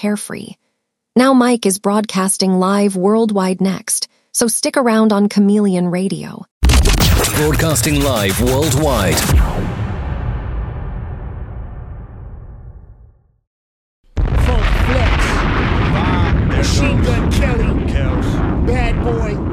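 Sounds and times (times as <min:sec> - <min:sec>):
speech: 0:00.0 - 0:00.6, 0:01.2 - 0:06.5, 0:07.2 - 0:09.7
dense burst of crackling booming noise: 0:06.6 - 0:13.4, 0:14.1 - 0:19.5
bomb-drop explosion sound effect: 0:08.5 - 0:13.4, 0:14.2 - 0:19.5.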